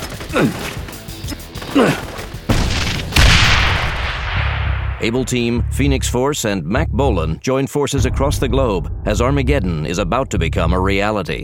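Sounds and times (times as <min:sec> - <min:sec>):
speech: 0:00.3 - 0:00.7, 0:01.8 - 0:02.0, 0:05.0 - 0:11.4
hand grenade explosions: 0:01.6 - 0:05.2.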